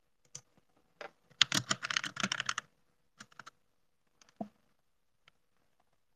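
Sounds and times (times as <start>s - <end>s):
typing on a computer keyboard for ASMR: 1.3s - 2.6s, 3.2s - 3.5s.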